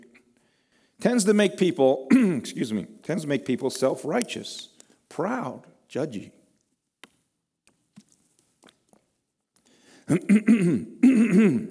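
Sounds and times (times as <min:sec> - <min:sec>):
speech: 0:01.0 - 0:06.4, 0:10.1 - 0:11.6
speaker with throat trouble clearing their throat: 0:02.1 - 0:02.4, 0:10.1 - 0:11.6.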